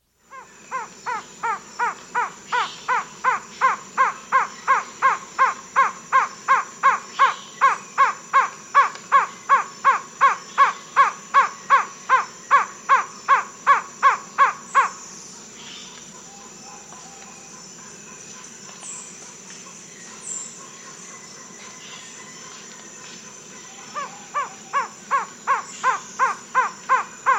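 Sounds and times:
slaty-tailed trogon calling in South America: 0:00.3 - 0:15.0, 0:23.7 - 0:27.3.

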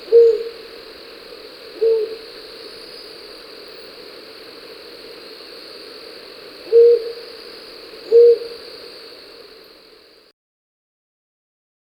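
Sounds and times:
Rufous-banded Owl giving low short hoots in Ecuador: 0:00.0 - 0:00.8, 0:01.4 - 0:03.1, 0:06.5 - 0:09.6
faint steady hiss: 0:00.0 - 0:10.3.

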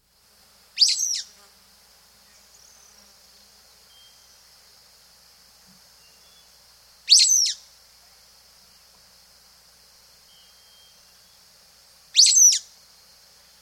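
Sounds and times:
Sulphur-bellied flycatcher calling in South America: 0:00.8 - 0:01.5, 0:02.2 - 0:04.6, 0:05.9 - 0:07.7, 0:10.0 - 0:13.6.

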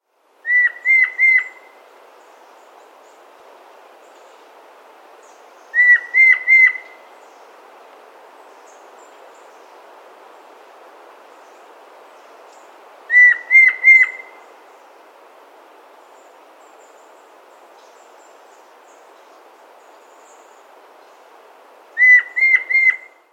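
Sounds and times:
White-bellied Antpitta calling in South America: 0:00.4 - 0:01.8, 0:05.7 - 0:07.1, 0:13.1 - 0:14.8, 0:22.0 - 0:23.3.

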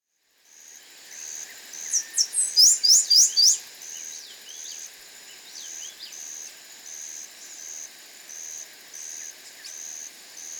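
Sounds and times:
Black-capped Sparrow song in Ecuador: 0:01.1 - 0:10.5.

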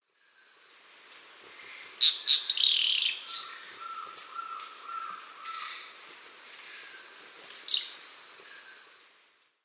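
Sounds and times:
Pipra erythrocephala song in the Eastern Lowlands of South America: 0:02.0 - 0:05.9, 0:06.8 - 0:08.9.

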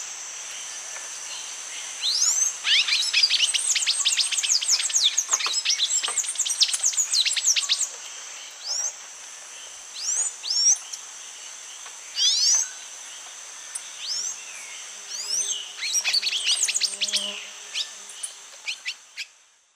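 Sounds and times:
Thraupis palmarum dawn song in South American Eastern Lowlands: 0:00.5 - 0:19.3
Thraupis palmarum calls in South American Eastern Lowlands: 0:02.1 - 0:09.0, 0:12.1 - 0:19.3.

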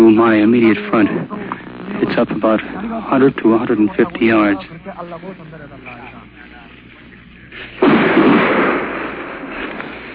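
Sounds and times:
speech: 0:00.2 - 0:06.2
artillery shell exploding during combat: 0:07.8 - 0:10.1.

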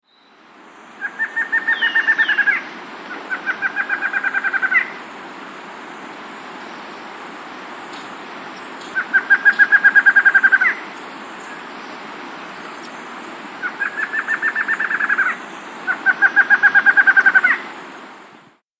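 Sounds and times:
Lined Antshrike in South America: 0:01.0 - 0:05.0, 0:07.9 - 0:11.7, 0:12.7 - 0:17.7.

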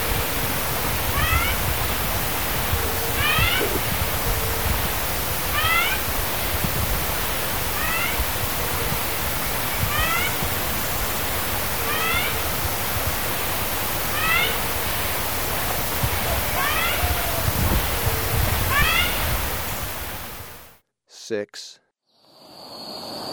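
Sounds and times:
heavy rushing noise: 0:00.0 - 0:20.7
spotted nightingale-thrush call in Ecuador: 0:00.0 - 0:20.7
speech: 0:21.3 - 0:21.8.

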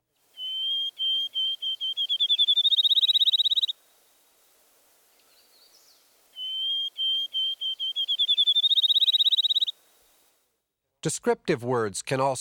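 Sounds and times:
field sparrow singing: 0:00.4 - 0:03.8, 0:05.3 - 0:09.8
speech: 0:11.0 - 0:12.4.

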